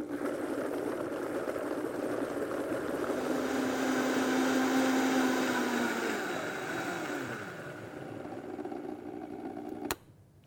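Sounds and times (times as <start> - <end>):
blender whirring: 0.0 - 10.0.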